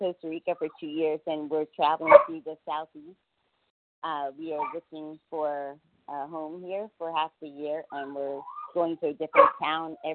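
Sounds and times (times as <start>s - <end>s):
speech: 0.0s - 3.3s, 4.0s - 10.1s
rescue dog from Costa Rica barking: 2.1s - 2.3s, 9.4s - 9.6s.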